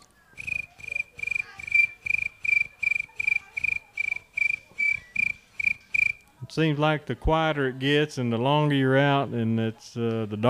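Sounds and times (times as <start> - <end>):
crickets chirping at night: 0.4 - 6.2
speech: 6.5 - 10.4.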